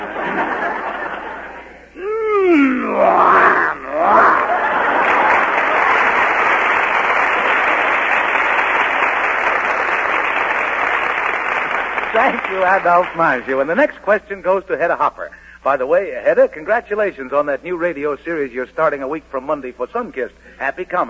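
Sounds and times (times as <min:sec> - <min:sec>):
laughter: 0:00.0 - 0:06.6
man imitating a lion's growl: 0:02.0 - 0:04.7
crowd applause: 0:03.8 - 0:13.5
speech: 0:12.7 - 0:21.0.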